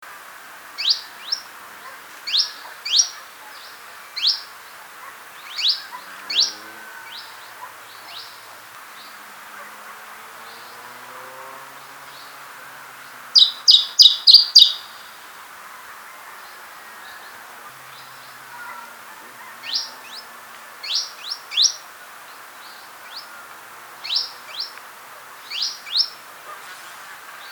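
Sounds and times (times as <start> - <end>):
Canary Islands chiffchaff Phylloscopus canariensis singing: 0.8 - 15.4, 19.2 - 26.3.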